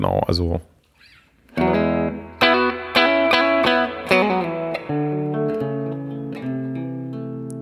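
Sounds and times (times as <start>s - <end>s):
speech: 0.0s - 0.7s
Telecaster electric guitar chords played on the bridge pickup with effects shimmer: 1.5s - 7.5s.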